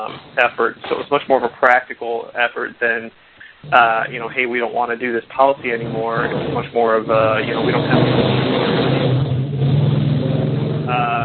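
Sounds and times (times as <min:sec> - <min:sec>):
speech: 0:00.0 - 0:08.7, 0:10.9 - 0:11.2
loud motorcycles revving outside open window: 0:03.6 - 0:04.6, 0:05.3 - 0:11.2
motorcycle accelerating with a higher whine: 0:05.3 - 0:11.2.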